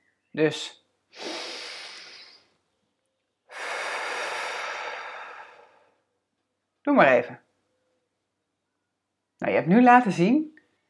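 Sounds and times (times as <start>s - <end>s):
speech: 0.3s - 1.3s, 6.8s - 7.4s, 9.4s - 10.5s
deep breath in and out: 1.1s - 2.6s, 3.5s - 6.1s.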